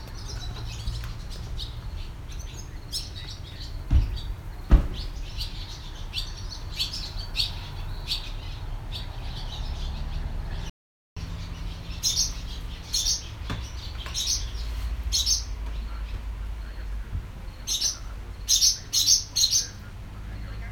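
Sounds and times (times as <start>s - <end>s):
Barn Swallow Hirundo rustica calling: 0.0s - 9.9s, 11.5s - 20.6s.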